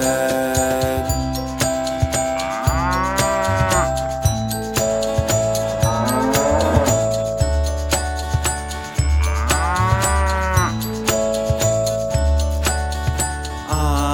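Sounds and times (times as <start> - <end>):
instrumental music with light jingling: 0.0 - 14.1
cow mooing: 2.0 - 4.0, 5.7 - 7.2, 9.2 - 10.8.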